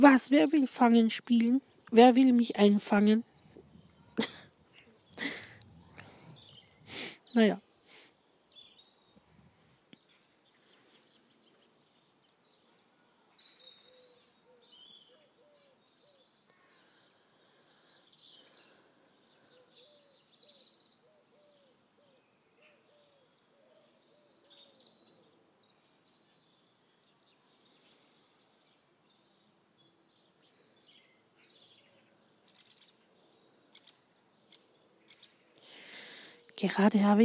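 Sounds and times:
speech: 0:00.0 - 0:03.3, 0:04.2 - 0:04.4, 0:07.0 - 0:07.6, 0:36.6 - 0:37.2
birds chirping and tweeting: 0:00.0 - 0:37.2
faint outdoor hiss: 0:00.0 - 0:37.2
soft low hooting call: 0:03.4 - 0:07.0
laughter: 0:04.2 - 0:04.5.

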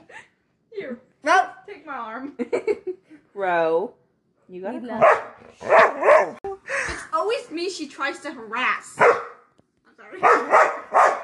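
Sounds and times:
speech: 0:03.4 - 0:06.4, 0:07.2 - 0:09.3, 0:10.1 - 0:11.2
female dog barking: 0:05.0 - 0:06.4, 0:09.0 - 0:09.5, 0:10.2 - 0:11.2.

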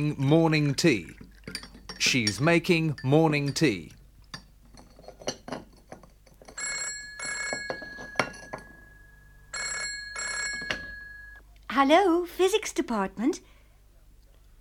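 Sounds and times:
speech: 0:00.0 - 0:04.0, 0:11.8 - 0:13.5
clinks and light tapping: 0:01.2 - 0:09.2, 0:10.0 - 0:11.4
telephone ringing with bright trilling electronic bell: 0:06.5 - 0:11.4.

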